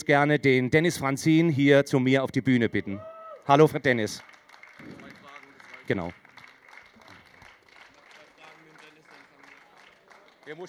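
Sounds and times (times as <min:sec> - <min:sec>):
speech: 0:00.0 - 0:05.1, 0:05.9 - 0:06.2, 0:10.5 - 0:10.6
audience applause: 0:03.4 - 0:10.6.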